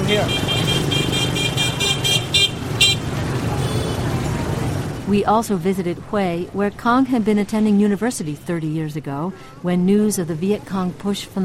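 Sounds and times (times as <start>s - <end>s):
short car horn toots: 0.0s - 4.3s
steady rumble of street traffic: 0.0s - 11.4s
speech: 0.1s - 0.5s, 5.1s - 11.4s.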